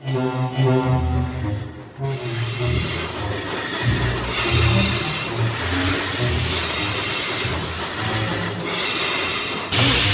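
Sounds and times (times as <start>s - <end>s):
large bus heavy rumbling engine: 0.4s - 8.7s
large bus brakes screeching on a cold wet evening: 3.0s - 10.0s.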